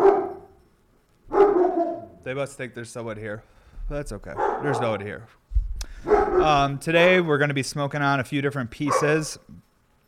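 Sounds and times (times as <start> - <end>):
dog barking: 0.0 - 0.5, 1.3 - 2.2, 4.4 - 5.1, 6.0 - 6.7, 8.9 - 9.4
speech: 2.2 - 5.4, 6.0 - 9.6.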